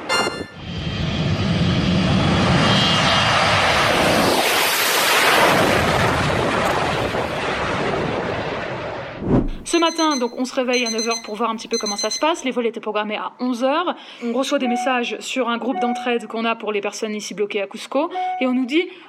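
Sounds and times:
airplane engine roar: 0:00.0 - 0:08.5
speech: 0:09.9 - 0:19.0.

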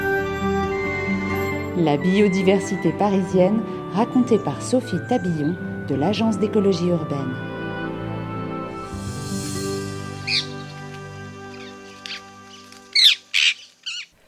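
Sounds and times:
soft musical bed: 0:00.0 - 0:13.9
speech: 0:01.8 - 0:07.5
rose-ringed parakeet shrill screeches in Paris: 0:10.2 - 0:10.9, 0:11.5 - 0:14.1.

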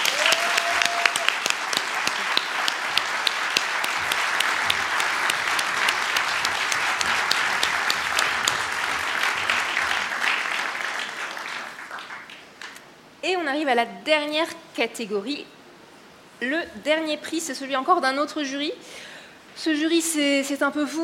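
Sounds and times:
audience applause: 0:00.0 - 0:12.8
speech: 0:13.6 - 0:15.6, 0:16.4 - 0:21.0.

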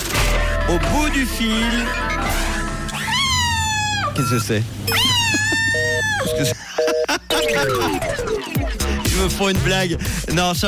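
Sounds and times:
speech: 0:00.7 - 0:02.5, 0:04.2 - 0:10.6
cat meowing: 0:02.9 - 0:06.4
laughter: 0:05.0 - 0:09.6
faint beeps: 0:05.7 - 0:07.8.

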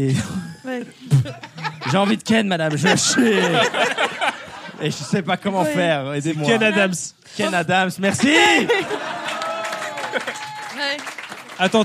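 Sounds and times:
speech: 0:00.0 - 0:04.2, 0:04.8 - 0:09.2, 0:10.1 - 0:11.8
laughter: 0:00.1 - 0:05.8, 0:06.4 - 0:10.9
people talking and exclaiming: 0:01.1 - 0:11.8
small audience clapping: 0:08.5 - 0:11.8.

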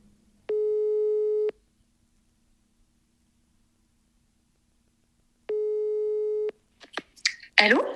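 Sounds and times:
telephone ringback tone beeps: 0:00.5 - 0:01.5, 0:05.5 - 0:06.5
speech: 0:07.6 - 0:07.9.

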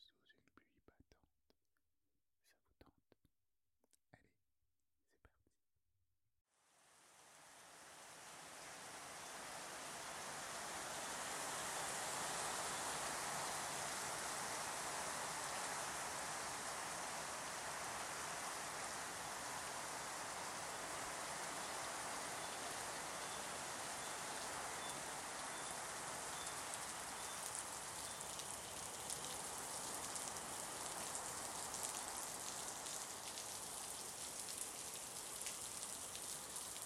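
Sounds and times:
Amazonian rain downpour in South America: 0:06.9 - 0:36.8.

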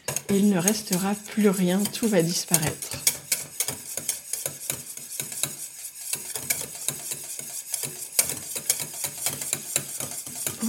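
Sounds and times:
faint sizzling hiss: 0:00.0 - 0:10.6
metal whisk beating against a saucepan: 0:00.0 - 0:10.6
speech: 0:00.3 - 0:03.0.

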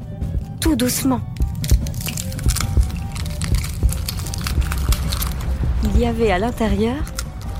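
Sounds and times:
speech: 0:00.7 - 0:01.5, 0:05.8 - 0:07.2
egg splitting open with baby dinosaur hatching: 0:01.2 - 0:05.6, 0:07.0 - 0:07.5
low rumbling undertone: 0:01.2 - 0:07.5.

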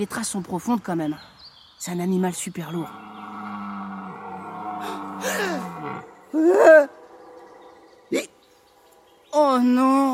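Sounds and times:
speech: 0:00.0 - 0:03.1, 0:04.8 - 0:07.0, 0:09.4 - 0:10.1
red deer stag belling roar during rut: 0:02.8 - 0:08.4.

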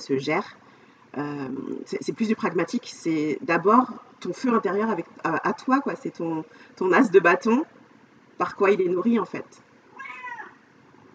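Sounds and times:
speech: 0:00.0 - 0:07.8, 0:08.4 - 0:09.7
quiet hiss: 0:00.0 - 0:11.1
black cat meowing: 0:09.9 - 0:10.6.

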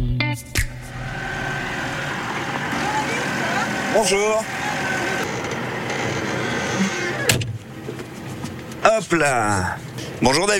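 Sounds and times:
tractor engine rumble: 0:00.6 - 0:09.0
speech: 0:04.0 - 0:04.6, 0:09.0 - 0:10.5
tractor cab door slamming: 0:05.2 - 0:07.6.

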